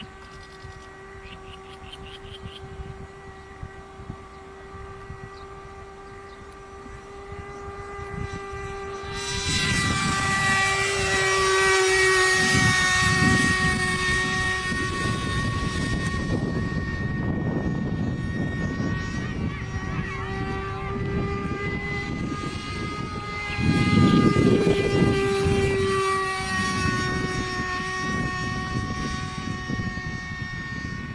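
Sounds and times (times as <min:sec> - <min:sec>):
F-16 fighter jet taking off: 0:00.0 - 0:31.1.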